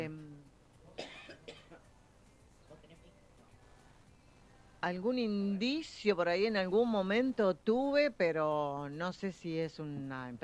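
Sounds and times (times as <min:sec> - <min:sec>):
person coughing harshly: 0:01.0 - 0:01.8
speech: 0:04.8 - 0:10.4.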